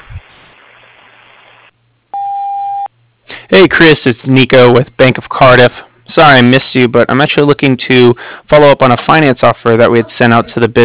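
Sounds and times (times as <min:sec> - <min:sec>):
electronic answering machine beep: 0:02.2 - 0:02.9
speech: 0:03.5 - 0:10.8.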